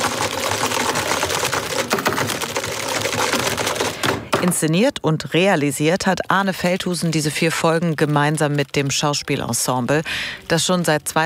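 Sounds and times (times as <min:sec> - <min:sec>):
rapid forceful typing on computer keyboards in an office: 0:00.0 - 0:04.8, 0:06.0 - 0:10.0
speech: 0:04.4 - 0:11.2.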